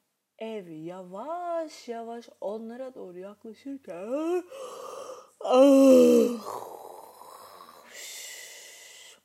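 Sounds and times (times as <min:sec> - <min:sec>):
speech: 0:00.4 - 0:04.8, 0:05.5 - 0:06.8
voice imitating pirates snoring: 0:04.5 - 0:09.2.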